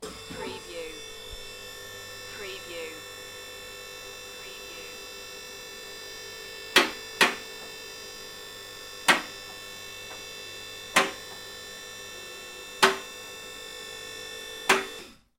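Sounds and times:
garage hydraulic car ramp: 6.7 - 7.9, 9.0 - 10.3, 10.9 - 11.5, 12.8 - 13.3, 14.5 - 15.2.

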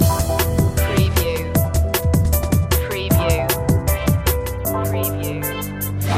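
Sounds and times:
car advert action chase soundtrack music loop: 0.0 - 6.1.

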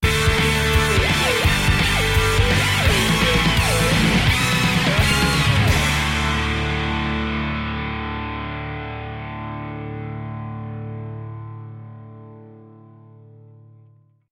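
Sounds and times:
invigorating music sting: 0.0 - 10.4.

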